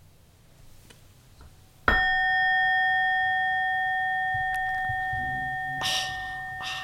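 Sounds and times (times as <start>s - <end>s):
gong struck and ringing with a bright metallic tone: 1.9s - 6.8s.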